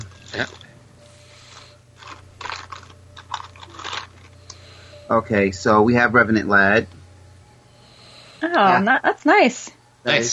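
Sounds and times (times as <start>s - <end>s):
low steady hum: 0.0s - 10.3s
speech: 0.3s - 0.6s, 5.1s - 7.0s, 8.6s - 10.3s
small plastic baggies holding collectible figures crinkling and rustling: 1.5s - 4.4s.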